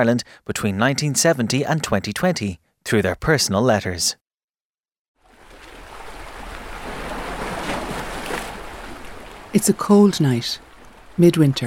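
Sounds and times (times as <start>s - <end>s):
speech: 0.0s - 4.2s, 9.5s - 11.6s
sea waves swelling and subsiding at a swimming spot on a cold midwinter night: 5.2s - 11.6s.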